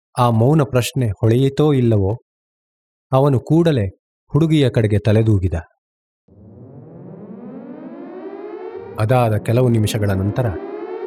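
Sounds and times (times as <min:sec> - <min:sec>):
speech: 0:00.2 - 0:02.3, 0:03.1 - 0:05.7, 0:09.0 - 0:10.7
air raid siren sounding the all-clear: 0:06.3 - 0:11.0.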